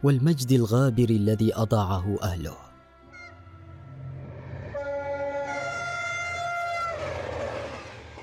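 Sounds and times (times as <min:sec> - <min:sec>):
speech: 0:00.0 - 0:02.7
train horn blast: 0:03.1 - 0:08.2
train rumbling along the railway tracks: 0:03.8 - 0:08.2.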